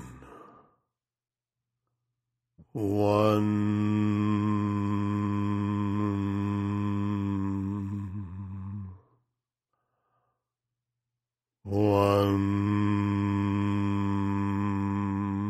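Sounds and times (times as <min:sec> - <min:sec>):
single voice chanting a long resonant syllable as a stress-relief mantra: 0:00.0 - 0:00.6, 0:02.6 - 0:09.1, 0:11.7 - 0:15.4.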